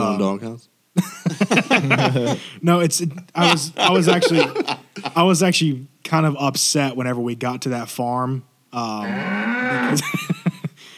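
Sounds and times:
speech: 0.2 - 10.6
laughter: 1.0 - 2.4, 3.4 - 5.2, 9.8 - 10.8
human voice imitating a cow mooing: 9.0 - 10.1.

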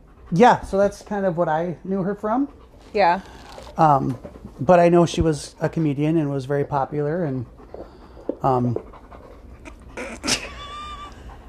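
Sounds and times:
dog panting heavily: 0.0 - 11.4
speech: 0.3 - 7.6, 8.4 - 8.9.

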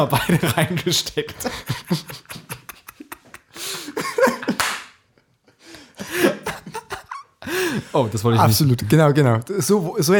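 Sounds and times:
speech: 0.0 - 2.4, 7.9 - 10.1
breathy laughter: 1.3 - 4.6, 5.9 - 7.9
loud sharp hand clap: 4.5 - 5.0.

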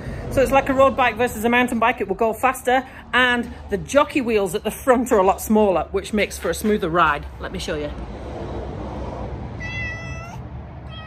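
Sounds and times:
speech: 0.4 - 8.3
cat meowing: 9.6 - 11.0.

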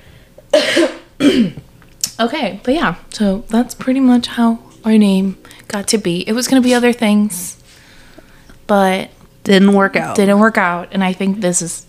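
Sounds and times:
harsh coughs: 0.5 - 1.6
speech: 2.2 - 7.6, 8.7 - 11.8.

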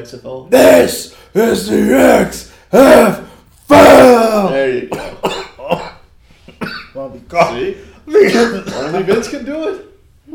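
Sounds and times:
speech: 0.0 - 5.4, 7.3 - 9.9
person coughing: 4.9 - 7.0, 8.2 - 9.5.

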